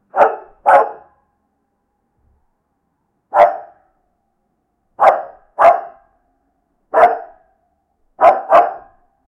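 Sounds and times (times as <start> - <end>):
dog barking: 0.1 - 1.2, 3.3 - 3.9, 5.0 - 6.1, 6.9 - 7.5, 8.2 - 9.1.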